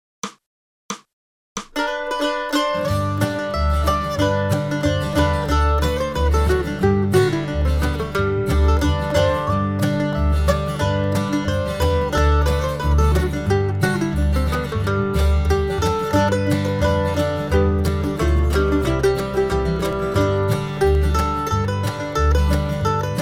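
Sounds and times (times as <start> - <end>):
mandolin playing in G: 1.8 - 23.1.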